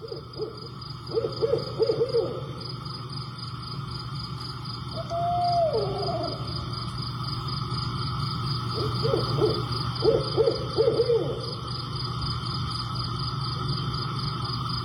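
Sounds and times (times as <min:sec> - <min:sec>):
barred owl hooting in Cross Junction Virginia USA: 0:00.0 - 0:02.8, 0:04.9 - 0:06.8, 0:08.7 - 0:11.7
insect chorus: 0:00.0 - 0:14.8.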